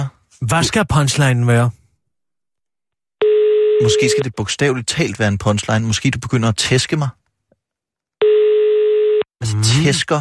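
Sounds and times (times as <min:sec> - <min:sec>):
speech: 0:00.0 - 0:01.8, 0:03.8 - 0:07.2, 0:09.4 - 0:10.1
telephone tone of a call not connecting: 0:03.2 - 0:04.2, 0:08.2 - 0:09.3.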